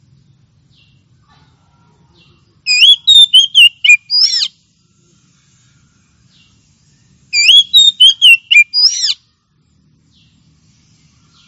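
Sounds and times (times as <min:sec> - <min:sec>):
Oriental magpie-robin varied whistled phrase ending in a scratchy upslur: 0:02.7 - 0:04.5, 0:07.4 - 0:09.2.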